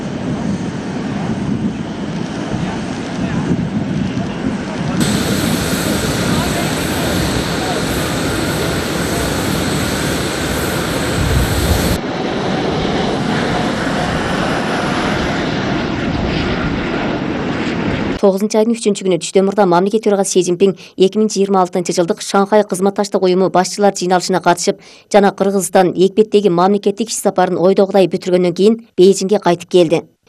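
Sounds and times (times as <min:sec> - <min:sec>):
airplane engine roar departing from an airport in Cairo: 0:00.0 - 0:18.2
speech: 0:18.2 - 0:30.2.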